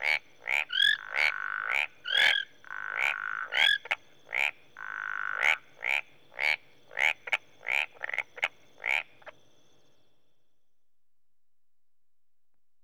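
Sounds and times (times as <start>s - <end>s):
frog droning call: 0.0s - 6.6s
marsh frogs and tree frogs croaking: 0.0s - 10.1s.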